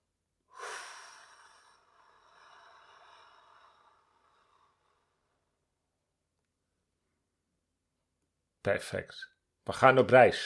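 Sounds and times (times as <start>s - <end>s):
slow deep exhale through the mouth during a guided breathing exercise: 0.5s - 5.1s
speech: 8.6s - 10.4s.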